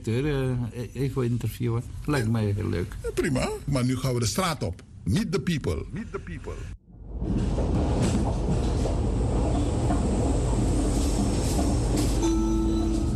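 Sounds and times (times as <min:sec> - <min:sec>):
speech: 0:00.0 - 0:06.8
metro train rumbling along the track toward a station: 0:07.0 - 0:13.1.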